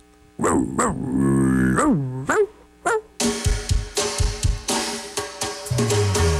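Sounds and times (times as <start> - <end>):
dog growling and barking: 0.4 - 3.1
driving band with drums playing: 3.2 - 6.3.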